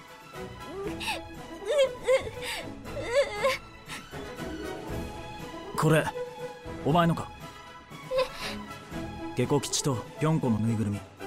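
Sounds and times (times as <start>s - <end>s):
young child crying and whimpering: 0.6s - 3.6s
speech: 5.8s - 6.2s, 6.8s - 7.4s, 9.4s - 11.1s.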